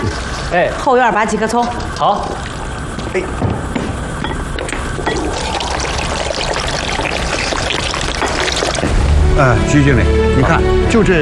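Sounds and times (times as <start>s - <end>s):
light soy sauce being poured while cooking: 0.0s - 0.8s, 1.6s - 3.2s, 4.5s - 9.1s
speech: 0.5s - 2.4s, 3.1s - 3.5s, 9.4s - 11.1s.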